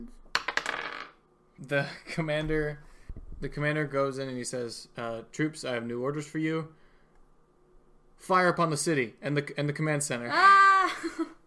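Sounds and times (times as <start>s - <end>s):
small purple die clattering onto a hard tabletop: 0.3s - 1.2s
speech: 1.6s - 6.8s, 8.2s - 11.4s.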